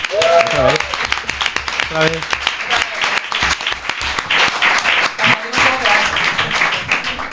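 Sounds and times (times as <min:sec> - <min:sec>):
audience shouts and cheers: 0:00.0 - 0:01.0
large audience applause: 0:00.0 - 0:07.3.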